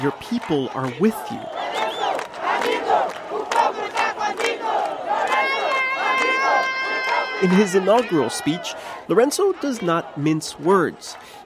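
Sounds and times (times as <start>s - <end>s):
speech: 0.0s - 1.6s, 7.4s - 11.4s
large crowd chanting and shouting in a pavilion: 0.0s - 11.4s
shrill whistles: 1.4s - 2.2s.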